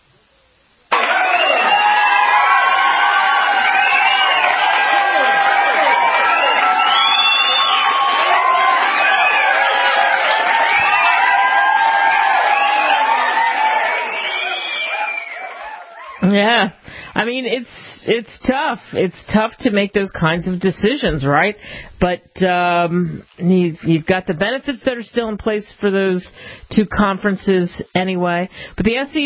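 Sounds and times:
large crowd cheering and shouting: 0.9 - 16.3
speech: 16.4 - 29.2.

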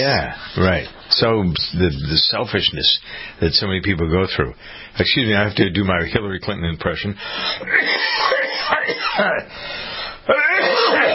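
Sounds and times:
speech: 0.0 - 11.1
person clearing throat: 7.6 - 9.5, 10.3 - 11.1
person coughing in harsh raspy bursts: 7.6 - 9.5, 10.3 - 11.1.

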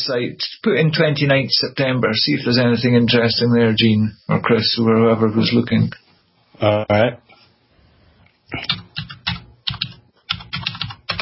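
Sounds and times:
speech: 0.0 - 6.0, 6.6 - 7.2, 8.5 - 9.1
fast clattery typing on a loud computer keyboard: 8.6 - 11.2.

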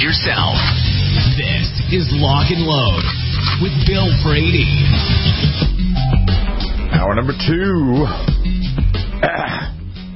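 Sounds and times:
speech: 0.0 - 5.7, 7.0 - 9.6
throat clearing: 9.2 - 9.8.

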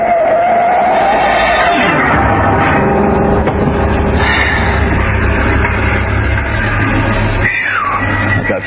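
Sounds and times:
dense roaring wash of traffic-like noise: 0.0 - 8.6
car engine revving hard: 0.1 - 8.6.

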